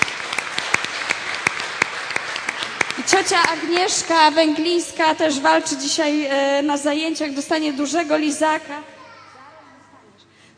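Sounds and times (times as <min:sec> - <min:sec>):
group of young children applauding their teacher: 0:00.0 - 0:04.4
speech: 0:03.1 - 0:09.0.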